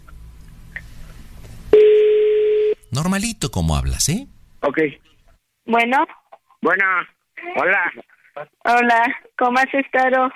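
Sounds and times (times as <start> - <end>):
steady continuous telephone line tone after dialing a number: 1.8 - 2.8
speech: 3.0 - 5.1, 5.7 - 10.3.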